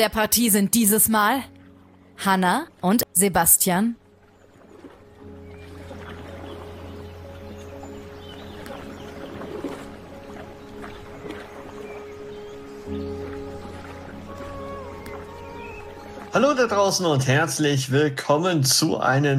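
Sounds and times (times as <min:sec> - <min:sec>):
speech: 0:00.0 - 0:01.6, 0:02.2 - 0:04.0, 0:16.4 - 0:19.3
paddling a boat on water in a PlayStation VR 2 game: 0:04.0 - 0:17.6.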